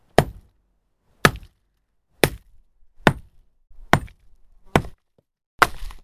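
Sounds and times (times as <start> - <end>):
hammer breaking rock: 0.2 - 0.5, 1.2 - 1.6, 2.2 - 3.3, 3.9 - 6.0.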